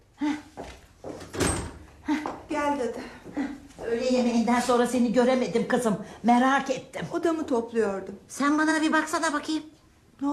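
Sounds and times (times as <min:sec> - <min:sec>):
door being opened: 0:01.2 - 0:01.8
speech: 0:03.9 - 0:10.3.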